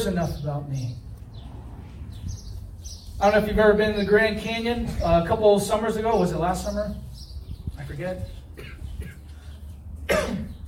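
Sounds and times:
speech: 0:00.0 - 0:01.1, 0:03.2 - 0:07.1, 0:07.9 - 0:08.4
cough: 0:08.6 - 0:09.3, 0:10.0 - 0:10.6.

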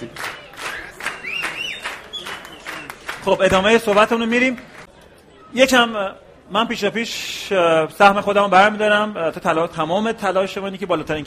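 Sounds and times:
crowd applause and clapping: 0:00.0 - 0:04.9
high gliding whistle tones: 0:00.7 - 0:03.0
speech: 0:03.2 - 0:04.7, 0:05.5 - 0:11.2.

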